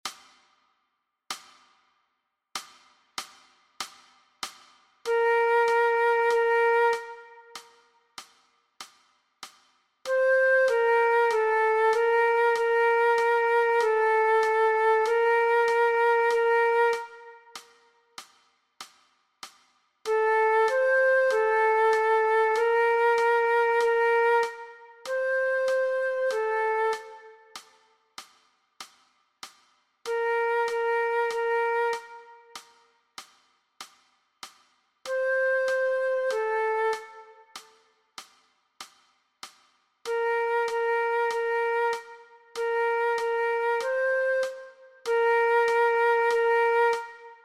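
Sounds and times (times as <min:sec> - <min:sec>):
flute backing track: 0:05.0 - 0:08.5, 0:10.0 - 0:18.2, 0:20.1 - 0:28.0, 0:30.0 - 0:33.0, 0:35.0 - 0:38.3, 0:40.0 - 0:47.4.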